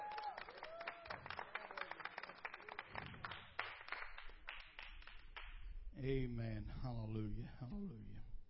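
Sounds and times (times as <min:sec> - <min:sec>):
crowd clapping in praise: 0:00.0 - 0:05.6
speech: 0:06.0 - 0:08.3.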